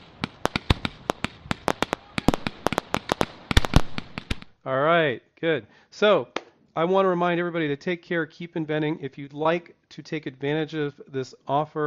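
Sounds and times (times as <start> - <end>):
fireworks crackling in a dense volley: 0.0 - 4.6
speech: 4.6 - 11.8.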